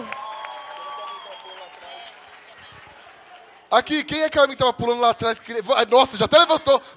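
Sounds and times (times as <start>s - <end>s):
audience applause: 0.0s - 3.7s
speech: 3.7s - 6.9s.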